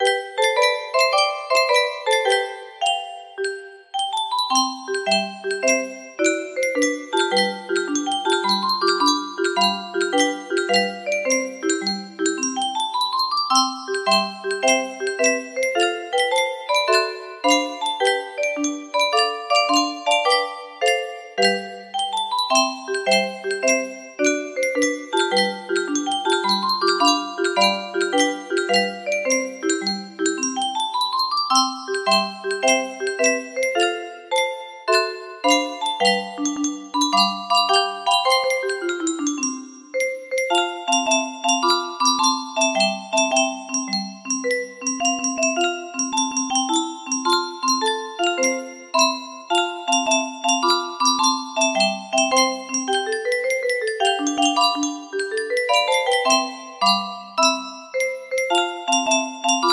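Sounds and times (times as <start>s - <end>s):
30-note music box melody: 0.0s - 59.7s.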